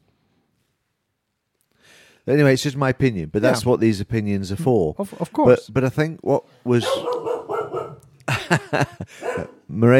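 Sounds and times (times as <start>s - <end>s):
speech: 2.3s - 7.2s, 8.5s - 9.9s
female dog barking after finding something: 6.8s - 8.1s, 9.1s - 9.7s
laughter: 8.2s - 9.6s.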